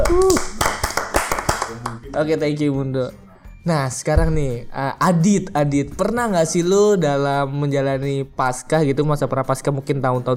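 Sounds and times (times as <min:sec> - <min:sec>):
several sharp hand claps in an uneven rhythm: 0:00.0 - 0:02.3
speech: 0:02.2 - 0:10.3.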